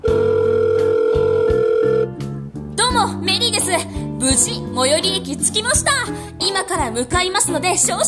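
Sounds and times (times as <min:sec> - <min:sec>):
telephone dial tone: 0:00.1 - 0:02.1
speech: 0:03.0 - 0:08.0.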